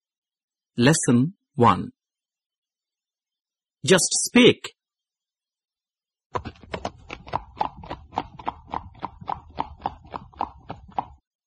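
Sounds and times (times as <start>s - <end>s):
speech: 0.8s - 2.0s, 3.8s - 4.8s, 6.3s - 6.8s
horse hooves clip-clopping: 6.4s - 11.2s.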